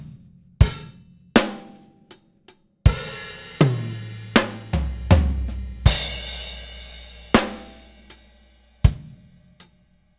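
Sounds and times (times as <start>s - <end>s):
standard rhythm: 0.6s - 1.8s, 2.9s - 9.7s.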